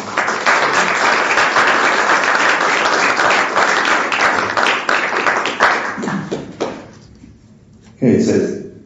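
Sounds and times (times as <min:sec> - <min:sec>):
audience applause for panelists: 0:00.0 - 0:06.9
speech: 0:08.0 - 0:08.6.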